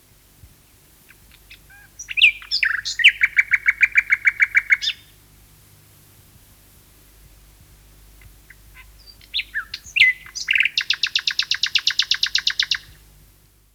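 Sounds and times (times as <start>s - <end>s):
common nightingale song with loud rapid rattle of repeated notes: 0.9s - 5.2s, 7.0s - 13.1s.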